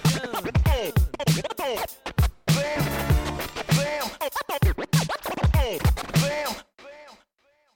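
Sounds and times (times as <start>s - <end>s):
turntable scratching on a Danish rap track: 0.0s - 6.7s
Danish rap track from Jutland with thumping beat: 0.0s - 7.7s.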